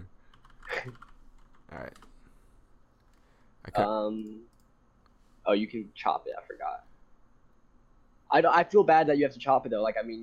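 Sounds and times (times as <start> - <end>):
typing on a computer keyboard: 0.3 - 2.1
speech: 3.7 - 4.5, 5.5 - 6.9, 8.3 - 10.2.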